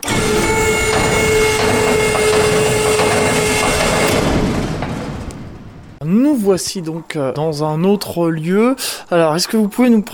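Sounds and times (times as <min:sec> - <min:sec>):
observatory dome shutter rolling closed with grinding rumble and whine: 0:00.0 - 0:06.0
speech: 0:06.3 - 0:10.1.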